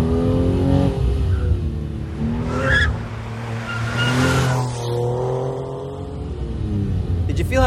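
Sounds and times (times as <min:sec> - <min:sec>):
Porsche 911 sports car engine roaring through fast turns: 0:00.0 - 0:07.6
tire squeal: 0:01.2 - 0:05.0.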